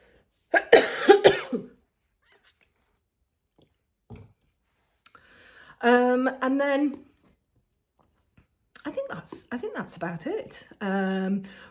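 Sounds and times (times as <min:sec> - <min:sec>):
harsh coughs: 0:00.6 - 0:01.8
speech: 0:05.8 - 0:07.1, 0:09.2 - 0:11.6.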